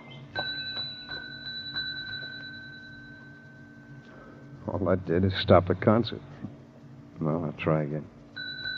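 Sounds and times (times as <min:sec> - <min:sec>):
bright ringing tone: 0:00.2 - 0:05.4, 0:08.4 - 0:08.7
desk bell dinging: 0:00.4 - 0:04.6, 0:08.4 - 0:08.7
speech: 0:04.7 - 0:06.3, 0:07.2 - 0:08.2.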